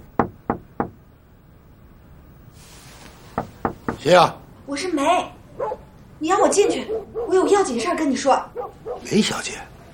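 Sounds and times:
faint room noise: 0.0s - 9.9s
knocking on a door: 0.2s - 1.0s, 3.4s - 4.1s
speech: 4.0s - 5.4s, 6.2s - 9.7s.

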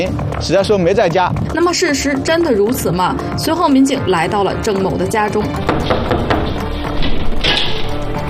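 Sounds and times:
speech: 0.0s - 6.3s
sharp knocks on a door: 5.6s - 7.2s.

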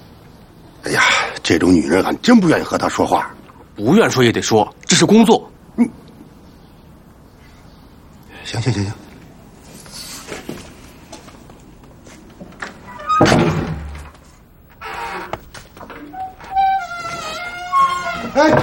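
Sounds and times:
speech: 1.4s - 6.0s, 8.5s - 9.0s
door pushed shut with a heavy thunk: 12.7s - 18.6s.

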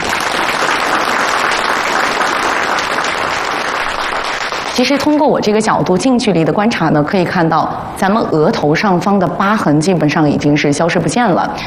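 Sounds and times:
audience applause: 0.0s - 5.2s
speech: 4.8s - 11.6s.

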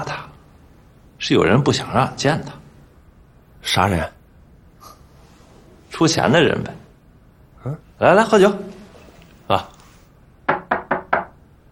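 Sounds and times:
speech: 1.2s - 2.6s, 3.6s - 4.2s, 6.0s - 6.8s, 7.6s - 8.8s, 9.5s - 9.8s
firm knocks on a wooden door: 10.5s - 11.4s.

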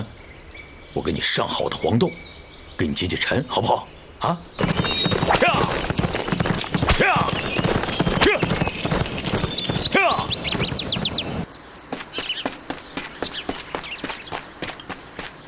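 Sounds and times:
bright bird chirps and tweets: 0.0s - 15.4s
speech: 1.0s - 6.0s, 10.0s - 10.4s
hooves of a horse ridden by a lone American soldier clip-clopping: 4.6s - 15.4s.

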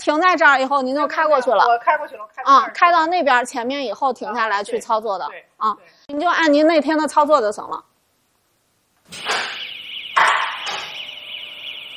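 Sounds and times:
speech: 0.0s - 7.9s
alarm sounding at a parking space: 9.2s - 11.9s.

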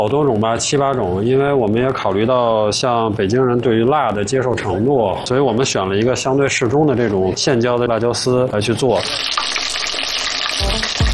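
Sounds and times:
speech: 0.0s - 9.6s
battered chicken foot tendons deep-frying in hot oil: 8.8s - 11.1s.

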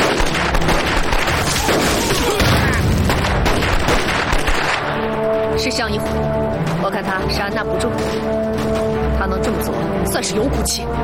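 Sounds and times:
explosions in a battle: 0.0s - 5.0s
gunfire in a battle: 0.0s - 5.1s
speech: 5.6s - 11.0s.

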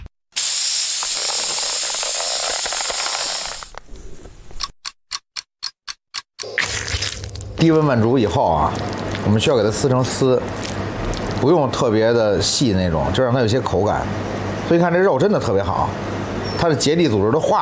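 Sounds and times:
vacuum sealer drawing air out of a bag of spiced meat: 0.4s - 3.7s
speech: 7.6s - 10.7s, 11.4s - 16.1s, 16.6s - 17.6s.

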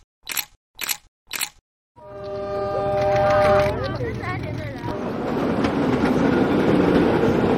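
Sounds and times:
suburban commuter train passing on rails: 2.0s - 7.5s.

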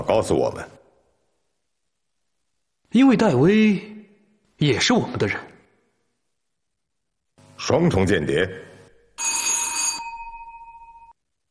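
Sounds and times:
speech: 0.0s - 0.8s, 2.9s - 4.0s, 4.6s - 5.5s, 7.6s - 8.6s
telephone bell ringing: 9.1s - 11.2s.

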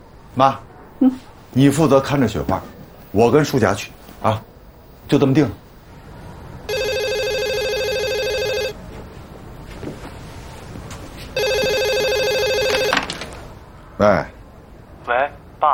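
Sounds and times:
speech: 0.4s - 4.5s, 5.1s - 5.6s, 14.0s - 14.3s
telephone ringing electronically: 6.7s - 8.8s, 11.4s - 13.4s.

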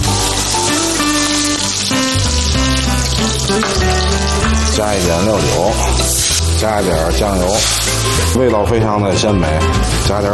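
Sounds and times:
peeled shrimp pan-frying in hot oil: 0.0s - 8.4s
tuneful music bed: 0.0s - 10.3s
speech: 4.8s - 10.3s.

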